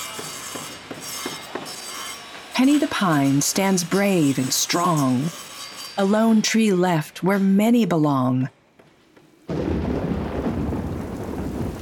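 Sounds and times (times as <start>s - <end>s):
speech: 2.6s - 5.4s, 6.0s - 8.6s
heavy rain in a storm: 9.5s - 11.8s
loud steady roar of wind in a storm: 9.5s - 11.8s.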